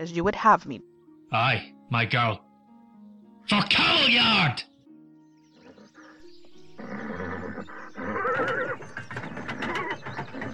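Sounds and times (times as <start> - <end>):
speech: 0.0 - 2.5, 3.5 - 4.7
horse whinnying: 6.8 - 10.5
castle drawbridge lowering with mechanical ratcheting and clanking: 8.0 - 10.5.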